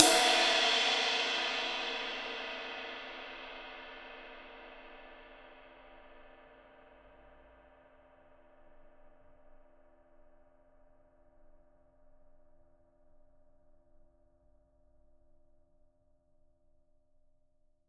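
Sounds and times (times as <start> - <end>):
acoustic ride cymbal: 0.0 - 10.4.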